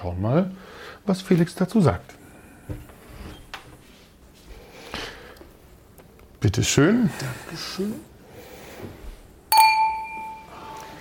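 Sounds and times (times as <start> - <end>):
speech: 0.0 - 2.8, 6.4 - 8.1
glasses of rosé wine clinking in a toast: 9.5 - 10.9.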